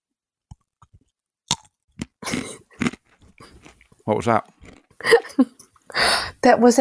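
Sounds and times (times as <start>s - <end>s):
crunchy chewing of a crisp potato ring snack: 0.5s - 5.9s
speech: 4.1s - 6.7s.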